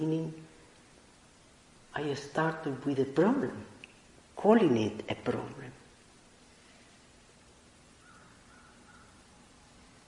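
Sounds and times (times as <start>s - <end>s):
speech: 0.0s - 0.5s, 2.0s - 3.7s, 4.4s - 5.8s
steady hiss: 0.0s - 10.0s
bird calling with short harsh caw-like notes: 8.0s - 9.4s.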